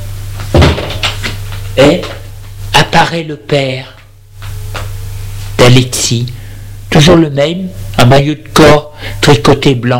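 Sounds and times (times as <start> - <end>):
low steady hum: 0.0 - 9.9
kitchen door opening with a solid wooden thump: 0.5 - 1.2
speech: 1.8 - 2.2, 3.0 - 4.0, 5.8 - 9.9.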